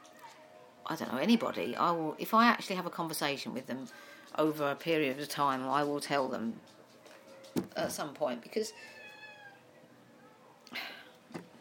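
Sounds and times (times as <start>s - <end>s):
speech: 0.9s - 6.8s, 7.8s - 9.0s
pet cat meowing faintly: 8.7s - 9.7s.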